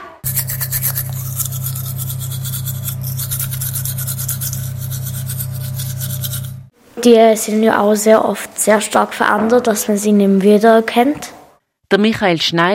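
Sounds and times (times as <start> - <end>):
toothbrush scrubbing with a low motor-like buzz: 0.2 - 6.7
speech: 7.0 - 11.3, 11.9 - 12.7.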